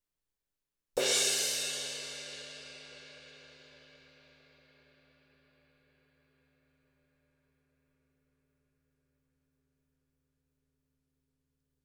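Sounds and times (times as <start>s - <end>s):
crash cymbal: 1.0s - 4.1s.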